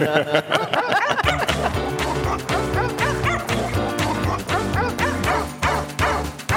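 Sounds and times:
laughter: 0.0s - 5.3s
dense continuous musical backing: 1.2s - 6.5s
dog barking: 2.8s - 3.7s, 4.5s - 5.4s
dog yipping: 2.8s - 5.4s.

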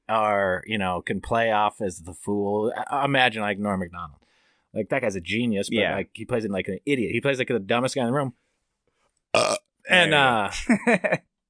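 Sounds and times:
speech: 0.1s - 8.4s, 9.3s - 11.3s
laughter: 5.1s - 6.1s, 9.9s - 11.2s
long loud burp wavering in pitch: 9.4s - 10.1s
gulp: 9.4s - 10.4s.

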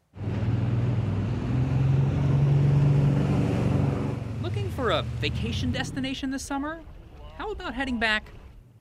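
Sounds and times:
wooden motorboat engine droning in summer: 0.1s - 7.2s
wind: 0.1s - 8.8s
rushing water: 0.2s - 8.4s
speech: 4.9s - 8.4s.

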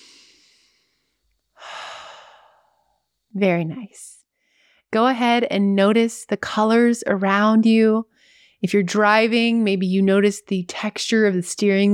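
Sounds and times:
deep breath: 0.0s - 3.1s, 4.4s - 4.9s, 8.1s - 8.6s
speech: 3.4s - 4.2s, 4.9s - 11.9s.

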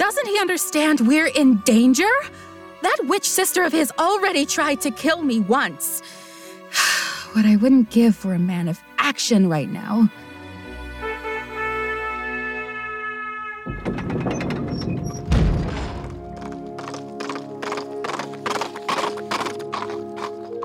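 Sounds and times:
speech: 0.2s - 10.2s
hooves of a white horse carrying an armored knight galloping into a courtyard: 13.7s - 20.6s.

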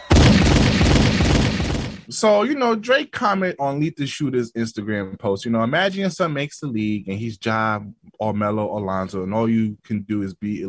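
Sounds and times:
rapid gunfire outdoors: 0.0s - 2.1s
speech: 2.2s - 10.6s.

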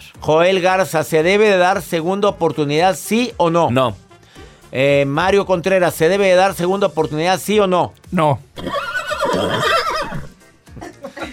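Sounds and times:
speech: 0.2s - 4.0s, 4.7s - 8.8s
horse neighing: 8.6s - 10.4s.

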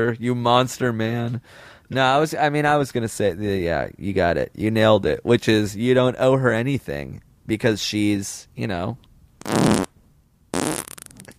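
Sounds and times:
speech: 0.0s - 9.8s
farts: 9.4s - 9.9s, 10.5s - 11.3s.

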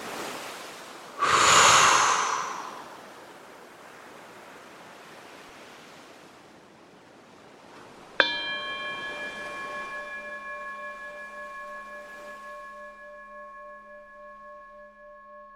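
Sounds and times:
person exhaling forcefully after stretching: 1.2s - 3.0s.

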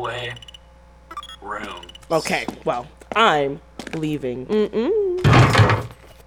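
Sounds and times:
speech: 0.0s - 0.5s, 1.4s - 6.0s
door being tried, clunking and rattling against its frame: 5.2s - 5.9s.

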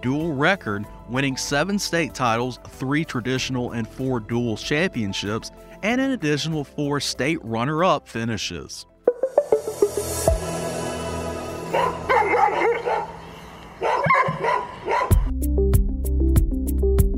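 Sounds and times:
speech: 0.0s - 9.4s
steady musical backing: 0.0s - 13.2s, 14.9s - 17.1s
several dogs barking and yipping at adoption event: 11.6s - 15.3s.

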